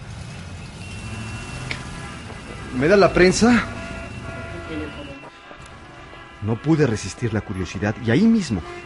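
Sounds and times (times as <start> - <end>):
low rumble of engines in busy city street traffic: 0.0 - 8.8
vehicles passing by on a busy city street: 0.0 - 8.8
high beep or brake squeal: 0.6 - 5.3
speech: 2.7 - 3.8, 6.4 - 8.8.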